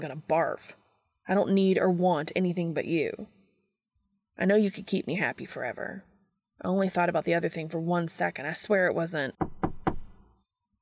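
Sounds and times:
speech: 0.0s - 3.4s, 4.4s - 9.5s
firm knocks on a door: 9.4s - 10.3s.

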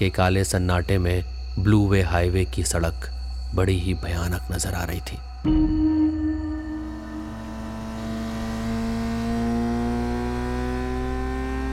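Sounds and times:
speech: 0.0s - 5.9s
motorcycle carrying two riders speeding along a highway on a cold night: 5.5s - 11.7s.

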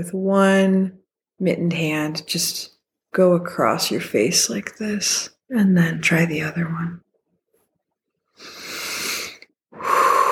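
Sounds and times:
speech: 0.0s - 7.0s
slow deep breathing with a faint whistling exhale: 8.4s - 10.3s.

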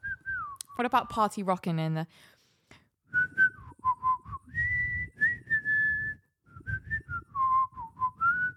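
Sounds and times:
person whistling a short song melody: 0.0s - 0.9s, 3.0s - 8.5s
speech: 0.8s - 2.4s.

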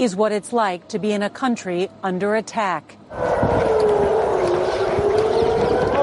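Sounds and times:
speech: 0.0s - 4.1s
air raid siren wailing during a rocket attack: 3.1s - 6.0s.

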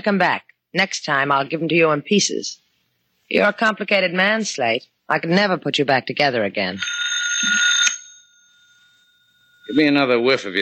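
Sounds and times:
speech: 0.0s - 2.6s, 3.3s - 7.7s, 9.7s - 10.6s
telephone bell ringing: 6.7s - 10.6s.

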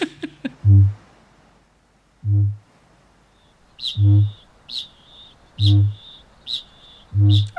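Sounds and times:
deep resonant booms of kākāpō: 3.4s - 7.5s
thin high-pitched chings and chirps: 3.8s - 7.5s.

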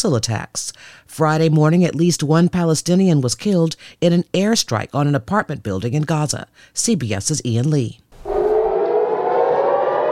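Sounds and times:
speech: 0.0s - 8.0s
air raid siren wailing: 8.2s - 10.1s.

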